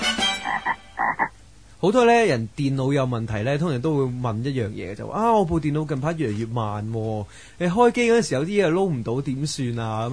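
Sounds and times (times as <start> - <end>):
edible frog croaking: 0.4 - 1.4
speech: 1.8 - 10.1.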